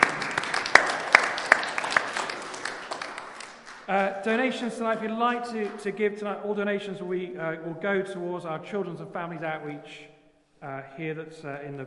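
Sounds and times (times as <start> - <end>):
small audience applause: 0.0 - 3.9
speech: 3.9 - 11.8.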